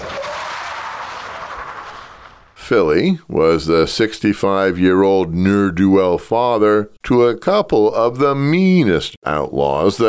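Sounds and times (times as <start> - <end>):
pickup truck tires skidding to a stop on loose ground: 0.0 - 2.6
speech: 2.7 - 10.0.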